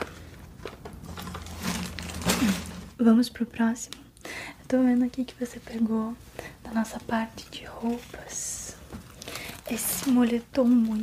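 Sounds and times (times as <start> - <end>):
items slipped into a shopping bag rustling: 0.0 - 3.0, 9.1 - 11.0
speech: 3.0 - 4.0, 4.7 - 8.6, 9.7 - 11.0.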